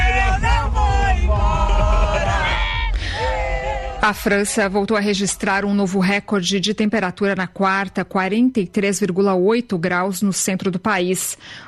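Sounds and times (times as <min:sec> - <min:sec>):
stadium crowd of national-team football fans cheering and chanting: 0:00.0 - 0:05.8
speech: 0:04.0 - 0:11.6.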